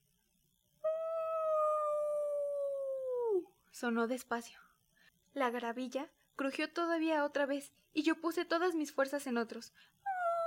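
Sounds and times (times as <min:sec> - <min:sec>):
low hollow howl blown through cupped hands: 0:00.9 - 0:03.5, 0:10.1 - 0:10.4
speech: 0:03.8 - 0:04.7, 0:05.4 - 0:10.0.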